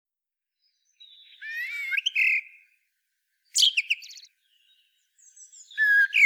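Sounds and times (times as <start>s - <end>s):
Common blackbird Turdus merula warbling, twittering and whistling: 1.0s - 2.7s, 3.6s - 6.2s.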